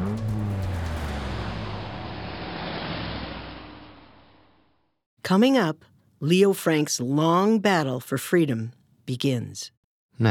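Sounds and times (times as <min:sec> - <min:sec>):
police car engine revving and speeding away: 0:00.0 - 0:04.8
speech: 0:05.3 - 0:10.2.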